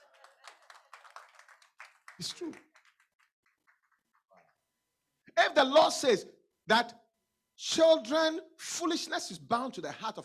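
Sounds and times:
audience clapping in a brisk steady rhythm: 0.0s - 4.6s
speech: 2.2s - 2.7s, 5.6s - 7.0s, 7.6s - 10.2s.

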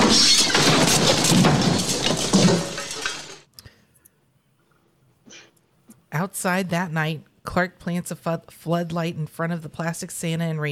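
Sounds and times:
chair, boxes and projector crashing down to the floor: 0.0s - 3.5s
speech: 6.2s - 10.7s.

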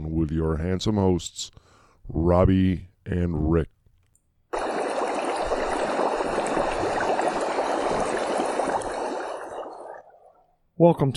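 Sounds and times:
speech: 0.2s - 3.8s, 10.8s - 11.1s
two-person hot tub water bubbling and churning with jets: 4.6s - 10.5s.

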